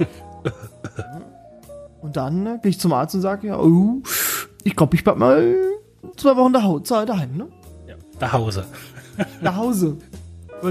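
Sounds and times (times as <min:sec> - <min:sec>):
speech: 0:00.0 - 0:00.6, 0:02.1 - 0:07.6, 0:08.2 - 0:10.6
person coughing: 0:00.4 - 0:01.3.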